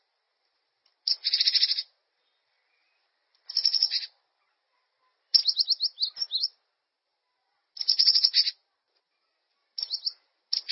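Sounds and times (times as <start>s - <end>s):
bird chattering: 1.0s - 1.9s, 3.4s - 6.6s, 7.8s - 8.6s, 9.2s - 10.7s.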